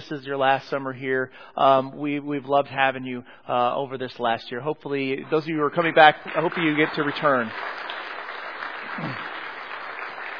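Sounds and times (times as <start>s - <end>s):
speech: 0.1s - 7.9s, 9.0s - 9.3s
audience applause: 5.8s - 10.3s
brief low vocal murmur: 8.9s - 9.4s.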